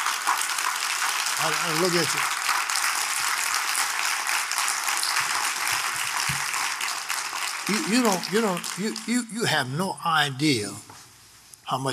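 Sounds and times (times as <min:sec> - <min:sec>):
large crowd applauding in Montreal: 0:00.0 - 0:09.4
speech: 0:01.4 - 0:02.4, 0:07.7 - 0:10.9, 0:11.7 - 0:11.9.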